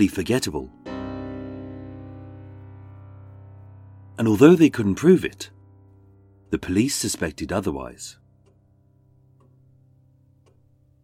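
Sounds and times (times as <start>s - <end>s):
speech: 0.0s - 0.8s, 4.2s - 5.6s, 6.5s - 8.2s
clock ticking: 6.4s - 11.0s.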